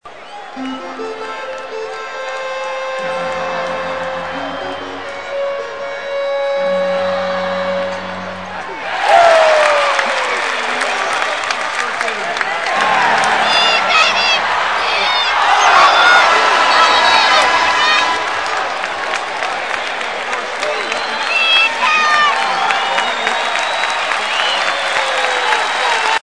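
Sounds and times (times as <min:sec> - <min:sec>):
basketball game ambience: 0:00.0 - 0:26.2.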